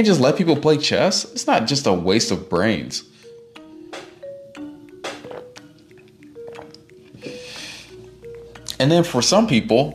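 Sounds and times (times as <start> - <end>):
speech: 0.0 - 3.2, 8.8 - 9.9
person gulping and swallowing water: 5.0 - 7.4.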